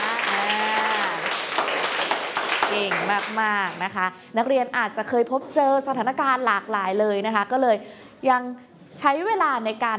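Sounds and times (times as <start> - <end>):
students in a classroom clapping for a classmate: 0.0 - 3.8
speech: 2.8 - 9.9.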